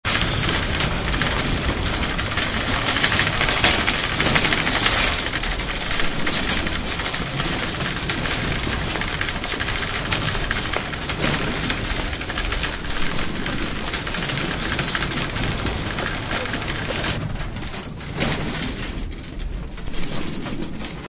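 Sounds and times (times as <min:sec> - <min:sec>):
cart wheels rolling: 0:00.0 - 0:21.0.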